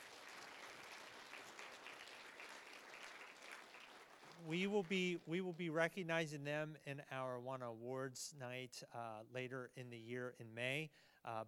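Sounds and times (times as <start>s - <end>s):
large crowd applauding at a church service: 0.0s - 5.6s
speech: 4.4s - 11.4s.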